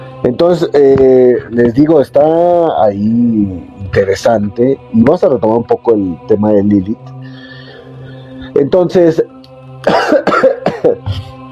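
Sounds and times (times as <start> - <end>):
speech: 0.4 - 7.2, 8.6 - 9.3, 10.8 - 11.3
person coughing harshly: 9.8 - 11.4
throat clearing: 9.9 - 11.4.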